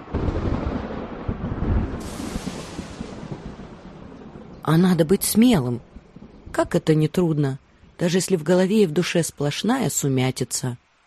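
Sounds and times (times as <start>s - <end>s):
deep rolling thunder: 0.0s - 6.6s
speech: 4.7s - 5.9s, 6.6s - 10.8s.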